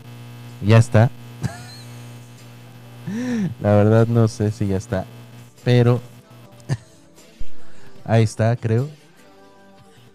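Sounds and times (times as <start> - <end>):
electrical hum from cable interference: 0.0 - 6.8
speech: 0.6 - 1.2, 3.1 - 6.1, 8.1 - 9.0
laughter: 1.4 - 2.4.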